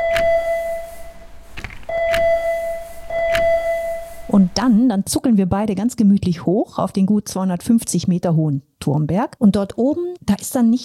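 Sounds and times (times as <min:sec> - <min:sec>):
bell at a small funicular valley station dinging: 0:00.0 - 0:01.2, 0:01.9 - 0:04.4
steady electric tone: 0:00.0 - 0:04.9
speech: 0:04.3 - 0:10.8.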